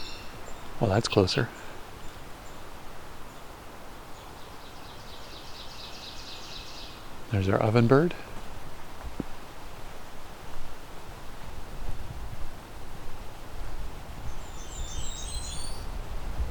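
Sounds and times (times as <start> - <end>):
Blackburnian Warbler song in mixed deciduous forest with red pines: 0.0 - 7.8, 14.2 - 16.0
steady background hiss: 0.0 - 16.5
speech: 0.8 - 1.6, 7.3 - 8.3.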